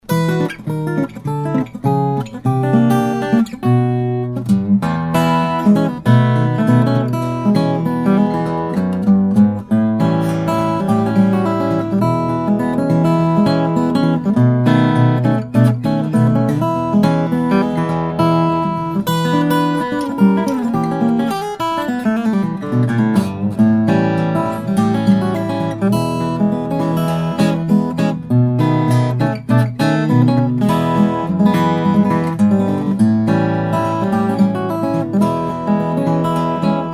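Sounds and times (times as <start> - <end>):
Lakewood A45 Custom guitar: 0.0 - 36.9.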